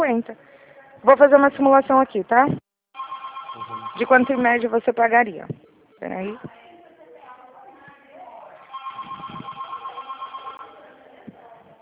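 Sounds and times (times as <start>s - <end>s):
speech: 1.0s - 2.6s, 3.6s - 6.6s
telephone ringing: 3.0s - 4.8s, 8.7s - 11.0s.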